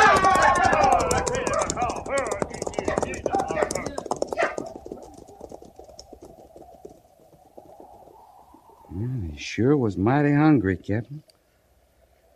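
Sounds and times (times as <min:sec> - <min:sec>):
herd of thousands of buffalo stampeding over hills: 0:00.0 - 0:08.9
voices calling: 0:00.0 - 0:11.2
speech: 0:09.6 - 0:11.3.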